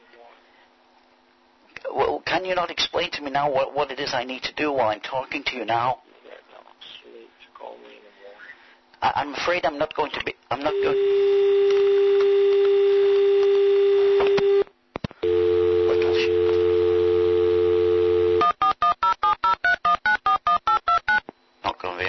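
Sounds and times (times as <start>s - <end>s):
speech: 2.4s - 6.1s, 9.0s - 11.3s
telephone dial tone after hang-up: 10.7s - 19.7s
telephone keypad dialing beeps: 18.4s - 21.2s.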